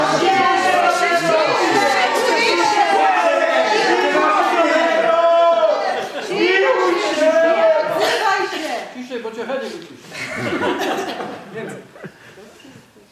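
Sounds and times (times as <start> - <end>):
people laughing: 0.0 - 8.0, 10.1 - 12.6
crowd shouting together to silence someone: 0.0 - 8.6.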